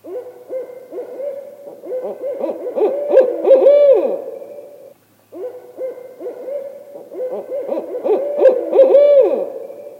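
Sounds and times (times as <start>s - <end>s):
pair of Barred Owls caterwauling played back from a CD: 0.0s - 4.5s, 5.4s - 9.8s
Barred Owl hooting with deep hoots ending in a wail: 0.0s - 9.9s.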